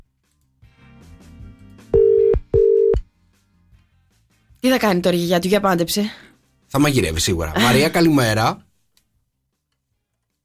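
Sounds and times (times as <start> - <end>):
telephone line beeps while placing a call: 2.0 - 3.0
speech: 4.6 - 8.6.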